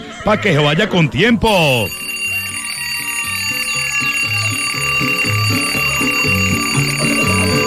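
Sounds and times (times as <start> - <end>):
speech: 0.2 - 2.0
alarm clock ringing with electronic melody of short stepped tones: 1.5 - 7.6.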